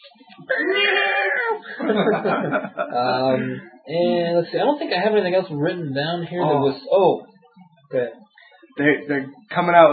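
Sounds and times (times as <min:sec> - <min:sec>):
rough breathy laughter-like vocal sounds: 0:00.4 - 0:03.7
speech: 0:01.9 - 0:07.3, 0:07.9 - 0:08.2, 0:08.8 - 0:09.9.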